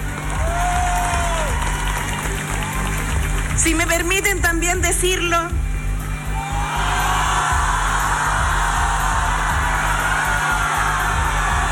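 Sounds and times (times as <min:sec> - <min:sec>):
large crowd clapping and cheering: 0:00.0 - 0:04.9, 0:06.3 - 0:11.6
speech: 0:03.6 - 0:05.7.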